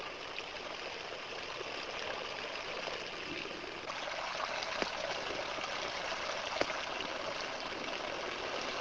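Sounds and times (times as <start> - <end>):
slightly sharper water drips: 0.0 - 8.7
water drops falling in a Kelvin water dropper: 3.8 - 8.7.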